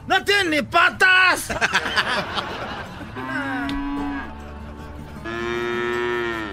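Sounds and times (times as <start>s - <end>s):
speech: 0.5s - 3.5s
laughter: 1.4s - 5.1s
cow mooing: 3.1s - 4.5s, 5.2s - 6.5s.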